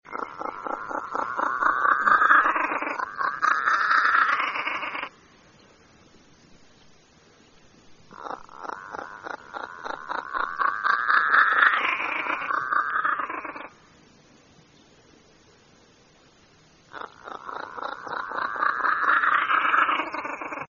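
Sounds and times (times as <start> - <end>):
pied crow calling: 0.1 - 5.2, 8.1 - 13.8, 16.9 - 20.6.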